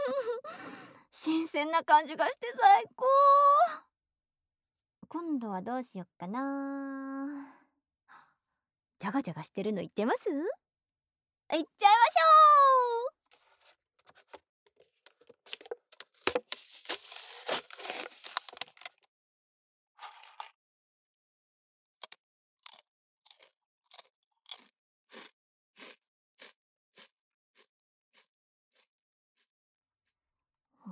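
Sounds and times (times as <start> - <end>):
speech: 1.2 - 3.9, 5.1 - 7.6, 9.0 - 10.6, 11.5 - 13.0
crunchy snack eaten in small bites: 16.2 - 19.0, 22.0 - 28.9.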